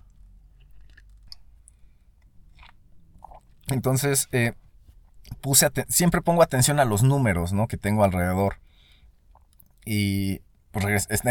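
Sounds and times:
person sipping coffee: 0.5s - 3.8s
swallowing: 0.6s - 3.8s
speech: 3.7s - 4.6s, 5.2s - 8.6s, 9.8s - 11.2s.

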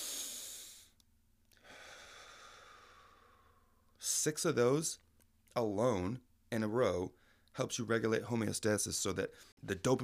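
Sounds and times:
deep breath in during breathwork: 0.0s - 1.0s, 1.6s - 3.8s
speech: 4.2s - 10.0s.

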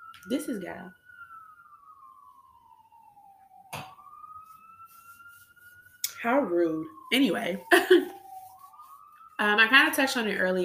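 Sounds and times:
emergency vehicle siren wailing outside: 0.0s - 10.6s
speech: 0.2s - 1.0s, 6.2s - 8.2s, 9.4s - 10.6s
sharp thump: 3.7s - 4.0s.

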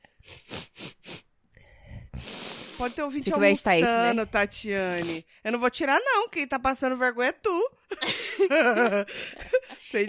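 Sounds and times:
noisy snuffling breath through the nose: 0.0s - 3.0s
nose sniffling into a microphone: 0.1s - 1.3s, 2.0s - 3.1s
speech: 2.8s - 10.0s
laughter: 8.0s - 10.0s.

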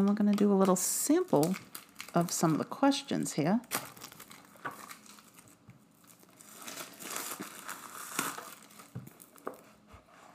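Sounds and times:
speech: 0.0s - 3.9s
plastic packaging of a card game crinkling as it is torn open: 0.0s - 9.7s.

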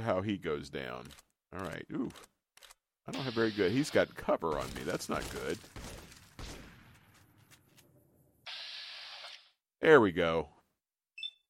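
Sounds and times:
speech: 0.1s - 6.0s, 9.8s - 10.6s
video game gunfire from an enemy firing at the player: 3.2s - 7.2s.

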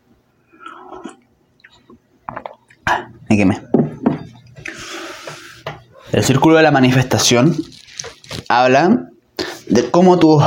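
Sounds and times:
louder gulp of tea: 0.5s - 1.8s, 2.4s - 3.2s
person sipping tea with soft wet slurps: 0.6s - 1.3s
speech: 2.9s - 3.7s, 6.2s - 7.7s, 8.5s - 9.0s, 9.7s - 10.4s.

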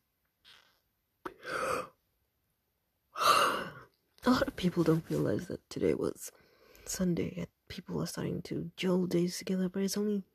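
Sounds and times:
breathy drawn-out yawn with a soft voiced tone: 3.2s - 3.8s
speech: 4.3s - 10.3s.

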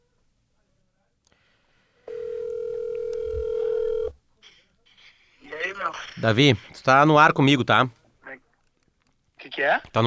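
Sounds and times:
ringback tone of an outgoing telephone call: 2.1s - 4.2s
speech: 5.8s - 8.0s, 9.6s - 10.0s.

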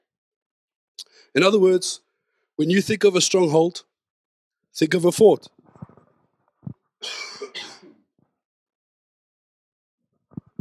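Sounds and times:
speech: 1.3s - 2.0s, 2.6s - 3.9s, 4.7s - 5.6s
harsh coughs: 7.0s - 8.1s.

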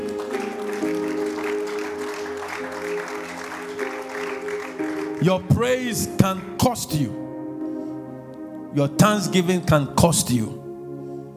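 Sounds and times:
congregation clapping: 0.0s - 6.0s
sustained keyboard chords: 0.0s - 11.3s
speech: 5.2s - 7.2s, 8.7s - 10.6s.

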